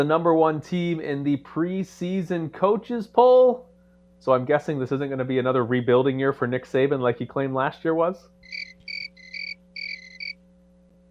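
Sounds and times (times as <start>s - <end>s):
speech: 0.0s - 8.6s
faint steady low hum: 0.0s - 11.0s
crickets chirping in high trilling bursts: 8.4s - 10.4s.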